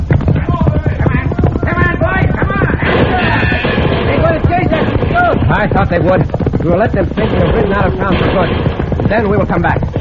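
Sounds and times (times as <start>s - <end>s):
horse hooves galloping: 0.0s - 9.9s
excited people calling out: 0.4s - 5.5s
speech: 5.8s - 9.9s.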